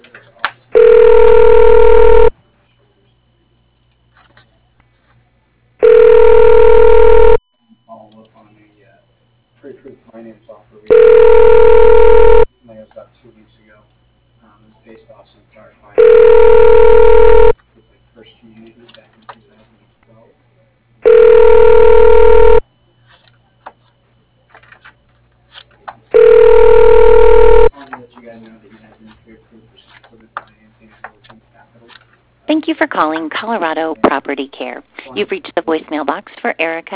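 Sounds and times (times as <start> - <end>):
telephone ringback during a call transfer: 0.8 - 2.3, 5.8 - 7.4, 10.9 - 12.5, 16.0 - 17.6, 21.0 - 22.6, 26.2 - 27.7
speech: 1.1 - 2.2, 33.0 - 36.9.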